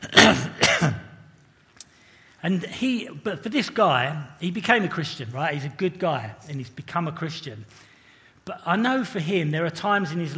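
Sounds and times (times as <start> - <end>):
person clearing throat: 0.0 - 1.2
speech: 2.4 - 7.9, 8.5 - 10.3.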